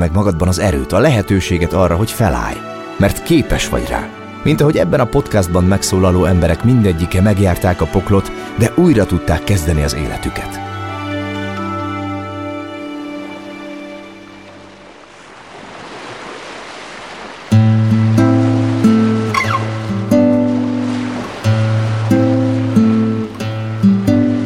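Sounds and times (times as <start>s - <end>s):
speech: 0.0s - 10.6s
sustained music: 0.0s - 15.0s, 17.5s - 24.4s
ocean waves washing onto a shore: 12.8s - 24.4s.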